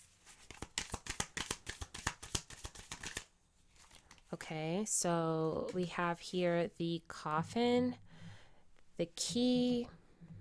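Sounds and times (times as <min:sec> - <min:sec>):
Lenormand cards being shuffled by hand: 0:00.0 - 0:04.2
speech: 0:04.3 - 0:08.0, 0:09.0 - 0:10.0.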